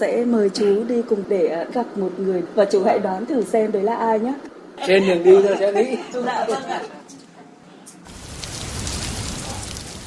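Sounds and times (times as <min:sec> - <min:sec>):
speech: 0:00.0 - 0:07.0
heavy rain downpour: 0:08.1 - 0:10.0.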